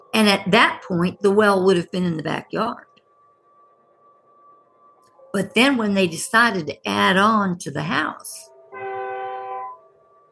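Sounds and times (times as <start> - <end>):
faint lingering hum: 0.0 - 8.7
speech: 0.2 - 2.9, 5.3 - 8.5
train horn blaring from a railroad depot: 8.7 - 10.0.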